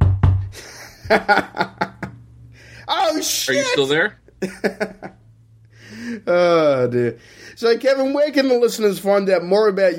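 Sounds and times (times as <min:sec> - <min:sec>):
knocking on a door: 0:00.0 - 0:00.5
dull thumps: 0:00.0 - 0:01.2
speech: 0:01.1 - 0:01.7, 0:03.2 - 0:05.2, 0:06.1 - 0:09.9.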